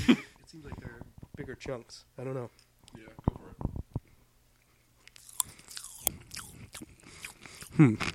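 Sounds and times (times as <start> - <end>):
speech: 0.1 - 0.3, 1.6 - 3.7, 7.8 - 8.1
chewing popping candy: 5.1 - 8.1
wet mouth sounds: 5.1 - 8.1.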